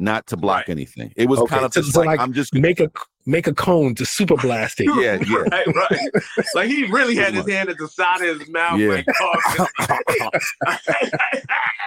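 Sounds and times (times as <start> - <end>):
speech: 0.0 - 11.8
laughter: 4.2 - 11.8
person imitating loud coughing: 4.8 - 6.6, 8.8 - 11.4.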